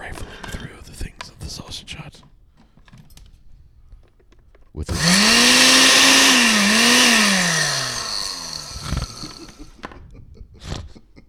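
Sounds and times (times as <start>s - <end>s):
blender motor whirring: 4.9s - 9.8s.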